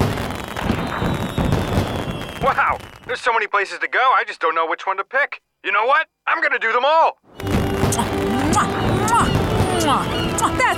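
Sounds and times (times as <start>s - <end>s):
4th of July fireworks barrage booming and crackling at a lake: 0.0s - 3.2s, 7.4s - 10.7s
speech: 2.4s - 8.8s, 9.8s - 10.7s.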